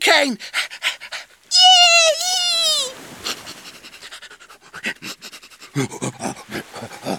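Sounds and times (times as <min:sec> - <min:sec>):
speech: 0:00.1 - 0:00.5, 0:05.8 - 0:07.0
laughter: 0:01.5 - 0:07.1
dog panting and sniffing: 0:03.2 - 0:07.1.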